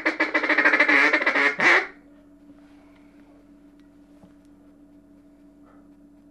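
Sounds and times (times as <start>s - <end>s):
mallard quacking while feeding: 0.0s - 2.0s.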